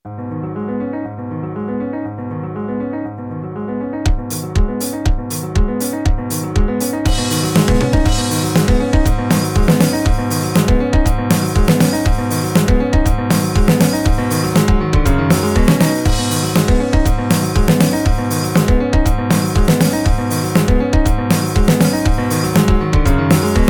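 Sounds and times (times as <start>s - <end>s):
piano: 0.0s - 23.6s
drums: 4.1s - 23.6s.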